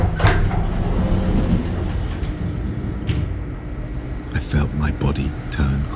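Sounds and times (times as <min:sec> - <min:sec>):
metal lift doors grinding and sliding open: 0:00.0 - 0:03.8
low mechanical rumble: 0:00.0 - 0:05.9
speech: 0:04.5 - 0:05.5.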